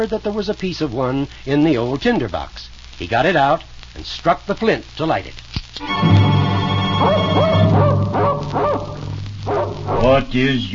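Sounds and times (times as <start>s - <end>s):
speech: 0.0s - 6.4s, 7.0s - 7.6s, 10.0s - 10.7s
low steady hum: 5.8s - 10.7s
big dog barking deeply: 7.0s - 10.2s.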